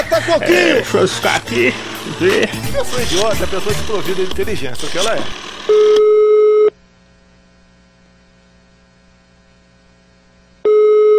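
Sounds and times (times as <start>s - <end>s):
laughter: 0.0s - 5.3s
faint hum: 0.0s - 11.1s
speech: 0.1s - 6.2s
mobile phone call tone beep: 5.7s - 6.7s, 10.6s - 11.1s.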